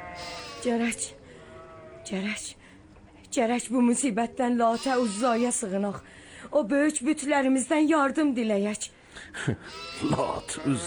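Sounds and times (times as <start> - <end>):
lambs in a flock bleating: 0.0 - 2.2, 4.6 - 6.0, 9.7 - 10.8
speech: 0.6 - 1.2, 2.1 - 2.6, 3.4 - 10.8.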